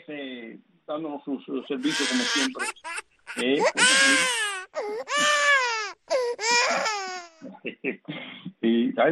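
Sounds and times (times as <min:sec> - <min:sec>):
speech: 0:00.1 - 0:05.4, 0:07.6 - 0:09.1
small child crying in long wavering wails: 0:01.8 - 0:07.4.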